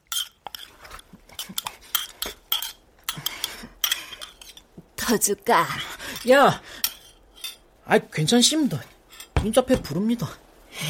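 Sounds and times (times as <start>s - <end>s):
metal spoons clinking and scraping against a bowl: 0.0s - 0.7s, 1.4s - 4.6s
slurping and chewing while eating soup: 0.1s - 4.6s
speech: 5.1s - 6.8s, 7.9s - 10.8s.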